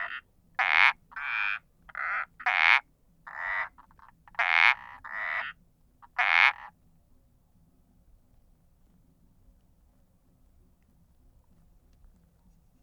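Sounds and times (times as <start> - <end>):
Indian balloon frog Uperodon palmatus croaking: 0.0 - 6.8.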